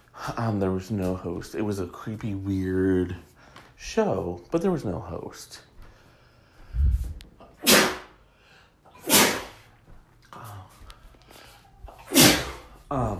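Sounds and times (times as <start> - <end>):
speech: 0.2 - 5.7
person sneezing: 7.4 - 8.2, 8.9 - 9.7, 11.9 - 12.8.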